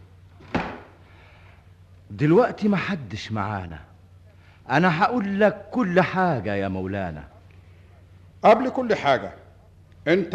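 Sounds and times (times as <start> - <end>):
quiet room hum: 0.0 - 10.3
door slamming shut: 0.4 - 0.9
speech: 2.2 - 3.9, 4.7 - 7.3, 8.4 - 9.4, 10.0 - 10.3.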